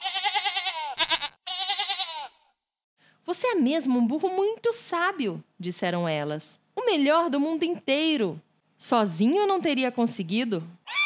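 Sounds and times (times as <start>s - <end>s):
sheep bleating: 0.0s - 2.5s
speech: 3.4s - 10.8s.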